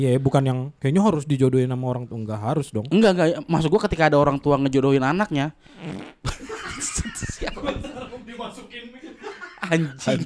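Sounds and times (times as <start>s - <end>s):
speech: 0.0s - 10.2s
person blowing a raspberry imitating a fart: 5.8s - 6.3s
people chuckling and snickering: 6.3s - 10.2s.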